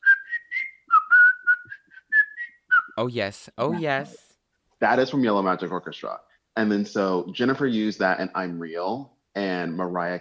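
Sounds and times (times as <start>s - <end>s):
person whistling a short bouncy melody from a song: 0.0s - 3.0s
speech: 3.0s - 4.2s, 4.8s - 10.1s.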